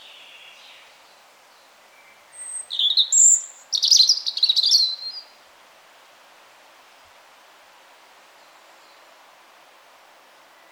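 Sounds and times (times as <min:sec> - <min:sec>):
European robin singing: 0:01.9 - 0:05.3.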